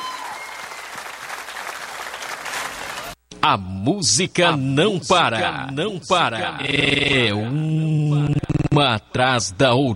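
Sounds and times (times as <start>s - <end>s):
crowd applauding: 0.0s - 3.2s
speech: 3.4s - 9.9s.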